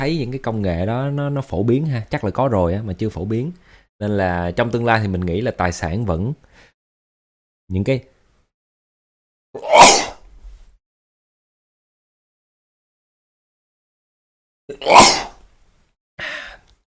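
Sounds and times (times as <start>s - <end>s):
speech: 0.0s - 6.5s, 7.7s - 8.1s, 9.5s - 10.0s
person sneezing: 9.6s - 10.2s, 14.7s - 15.4s.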